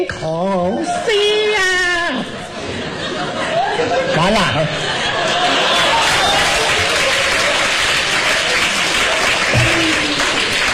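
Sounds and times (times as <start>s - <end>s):
speech: 0.0s - 1.2s
laughter: 2.1s - 10.7s
audience applauding at a Peking opera performance: 5.1s - 10.7s.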